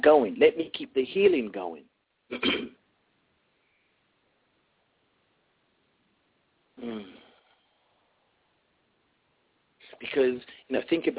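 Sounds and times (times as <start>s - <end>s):
speech: 0.0s - 2.8s, 6.8s - 7.2s, 10.0s - 11.1s
person clearing throat: 2.3s - 2.8s, 6.8s - 7.3s.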